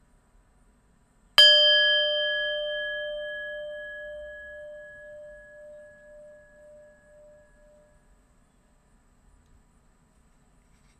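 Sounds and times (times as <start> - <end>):
meditation bell struck and ringing: 1.4 - 8.0.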